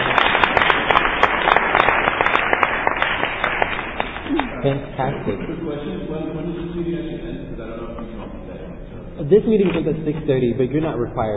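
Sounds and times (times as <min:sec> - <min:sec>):
room full of people applauding to congratulate someone: 0:00.0 - 0:05.1
speech: 0:04.6 - 0:08.4, 0:09.2 - 0:11.3.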